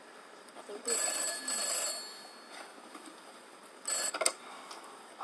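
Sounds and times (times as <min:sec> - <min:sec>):
telephone bell ringing: 0:00.9 - 0:02.7, 0:03.8 - 0:04.4.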